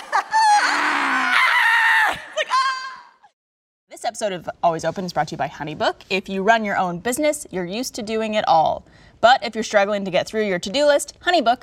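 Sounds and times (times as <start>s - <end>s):
person screaming while running: 0.3s - 3.2s
speech: 4.1s - 11.6s.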